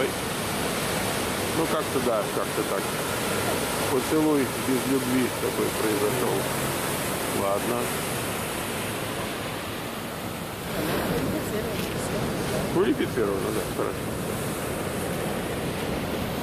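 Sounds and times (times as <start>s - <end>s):
ocean surf crashing against rocks: 0.0s - 16.4s
speech: 1.6s - 6.8s, 7.4s - 8.1s, 11.6s - 14.3s.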